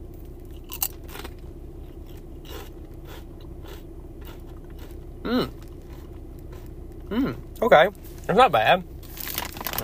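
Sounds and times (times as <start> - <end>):
steady low hum: 0.0 - 9.8
person chewing barbecue-flavored orange potato chips: 0.5 - 6.7, 9.1 - 9.8
speech: 5.3 - 5.6, 7.1 - 8.9.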